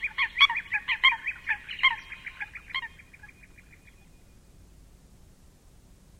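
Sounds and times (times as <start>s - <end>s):
Eurasian coot uttering nasal trumpet-like notes: 0.0s - 4.1s.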